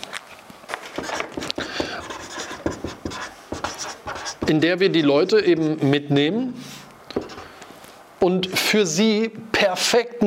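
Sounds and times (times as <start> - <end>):
writing on a board with scratchy strokes and taps: 0.9 - 4.6, 7.1 - 7.5
speech: 4.5 - 6.7, 8.2 - 10.2.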